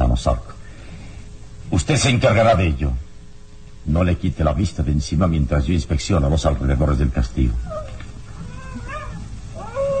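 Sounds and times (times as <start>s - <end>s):
low rumbling background: 0.0s - 9.9s
speech: 0.2s - 0.5s, 1.8s - 3.0s, 3.8s - 7.9s
wolf-like howl: 7.5s - 9.9s.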